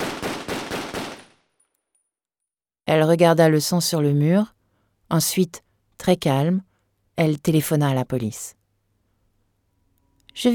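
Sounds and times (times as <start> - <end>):
gunshots fired until the magazine is empty: 0.0 - 1.5
speech: 2.9 - 8.6, 10.4 - 10.5.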